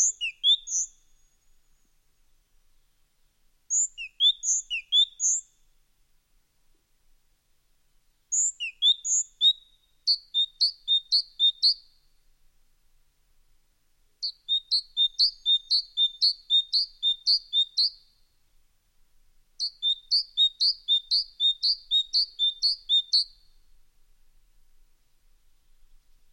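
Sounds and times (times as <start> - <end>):
bird song of thin high notes and quick repeated chirping phrases: 0.0 - 2.0, 3.7 - 5.7, 8.3 - 12.2, 14.2 - 18.4, 19.6 - 23.8.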